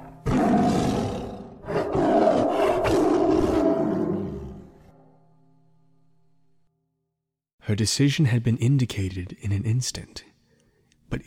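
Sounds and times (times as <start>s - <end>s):
tiger roaring: 0.0s - 4.9s
speech: 7.7s - 10.3s.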